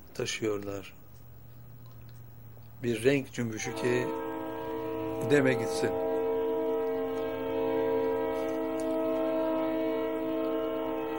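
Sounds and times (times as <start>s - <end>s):
low rumble of a passing train: 0.0s - 11.1s
speech: 0.2s - 1.0s, 2.8s - 4.2s, 5.2s - 6.0s
passing train horn holding one loud chord: 2.9s - 11.1s.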